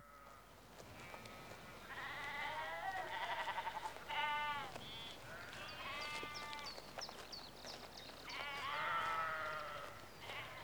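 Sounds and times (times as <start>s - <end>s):
sheep bleating in a rural outdoor setting in the early evening: 1.0s - 6.7s, 8.3s - 10.6s.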